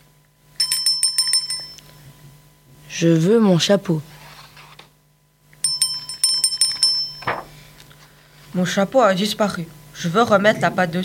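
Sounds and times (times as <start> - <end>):
bright bell ringing as page-turn cue: 0.6 - 1.9, 5.6 - 7.3
speech: 2.9 - 4.1, 8.6 - 11.0.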